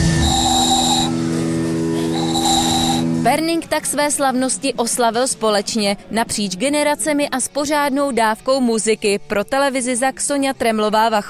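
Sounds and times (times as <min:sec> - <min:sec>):
small handmade ball-shaped whistle blown at a town festival in Pernink Czech Republic: 0:00.0 - 0:01.2, 0:02.0 - 0:03.1
steady hiss: 0:00.0 - 0:01.2, 0:01.8 - 0:03.2
speech: 0:03.2 - 0:11.2.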